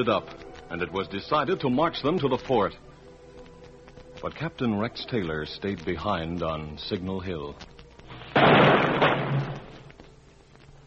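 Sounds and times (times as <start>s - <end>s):
speech: 0.0s - 2.9s, 4.2s - 7.7s
rifle volley fired across a grave at a soldier's funeral: 8.3s - 9.8s.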